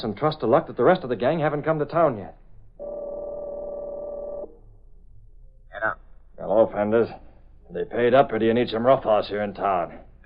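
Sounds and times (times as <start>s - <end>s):
speech: 0.0s - 2.9s, 5.8s - 10.1s
faint low murmur: 0.0s - 10.2s
telephone line dial tone: 2.8s - 4.5s.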